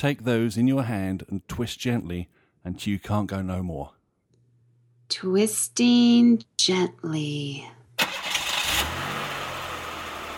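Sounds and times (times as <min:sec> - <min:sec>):
speech: 0:00.0 - 0:04.0, 0:05.1 - 0:07.8
manual-transmission car engine cranking with a gritty whir: 0:08.0 - 0:10.3.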